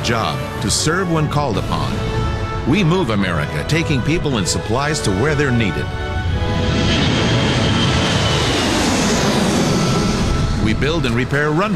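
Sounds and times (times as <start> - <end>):
airplane engine roaring while flying overhead: 0.0 - 11.7
speech: 0.1 - 6.8, 10.7 - 11.7.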